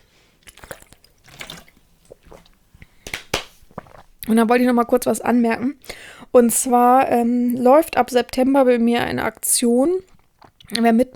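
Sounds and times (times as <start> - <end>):
person sipping water: 0.2 - 4.4, 10.0 - 11.0
gulp: 0.4 - 4.3, 10.0 - 10.9
sharp smacking sounds: 3.0 - 4.0
speech: 4.3 - 10.1, 10.7 - 11.1.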